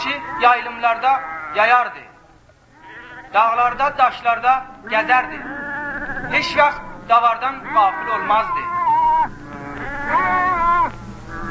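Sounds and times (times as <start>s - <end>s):
flock of sheep bleating: 0.0s - 2.0s, 2.7s - 3.8s, 4.8s - 6.8s, 7.4s - 11.4s
speech: 0.0s - 2.1s, 3.3s - 5.6s, 6.3s - 8.7s
faint steady hum: 0.0s - 11.4s.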